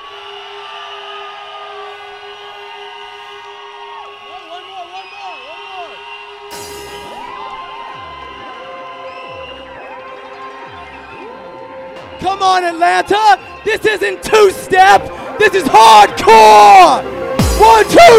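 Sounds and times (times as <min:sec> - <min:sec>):
whistles blowing: 0:00.0 - 0:07.5, 0:08.2 - 0:12.4
horns blaring: 0:00.0 - 0:18.1
large crowd screaming and cheering at hardcore show in Atlanta: 0:00.0 - 0:18.1
speech: 0:12.2 - 0:18.1.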